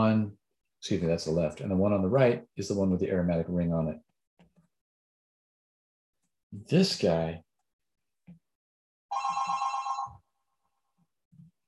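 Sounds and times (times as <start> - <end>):
speech: 0.0 - 4.1, 6.5 - 7.5
electronic telephone ring during a class: 9.1 - 10.2.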